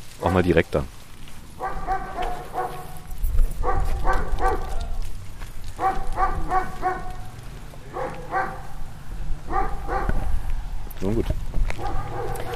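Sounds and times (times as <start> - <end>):
constant low outdoor rumble: 0.0 - 12.5
dog barking: 0.2 - 0.6, 1.6 - 4.9, 5.8 - 8.8, 9.5 - 10.3, 11.8 - 12.5
speech: 0.2 - 1.0.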